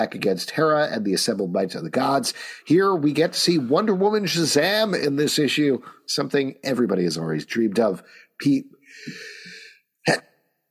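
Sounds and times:
speech: 0.0 - 9.4, 10.0 - 10.3
drawn-out breathy intake of air: 8.9 - 9.8
sneeze: 10.1 - 10.3.

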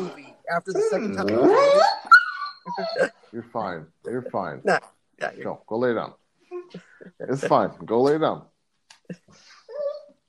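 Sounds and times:
dog whining: 0.0 - 3.2, 9.6 - 10.2
speech: 0.5 - 8.5, 9.1 - 9.5.

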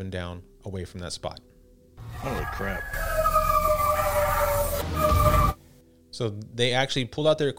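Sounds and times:
speech: 0.0 - 3.2, 6.2 - 7.5
eerie sustained whistles of unseen creatures: 2.0 - 5.6
wavering howls of unseen creatures: 2.0 - 5.6.

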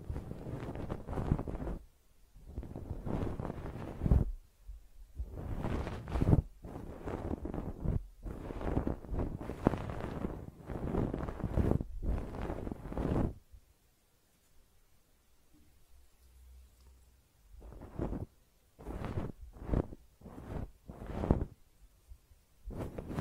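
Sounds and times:
ear cleaning rubbing and scraping against the microphone: 0.0 - 1.9, 2.5 - 4.4, 5.2 - 13.4, 15.9 - 21.6, 22.7 - 23.1.

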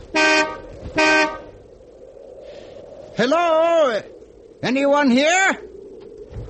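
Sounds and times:
car horn honking: 0.1 - 1.6
speech: 3.2 - 5.7.

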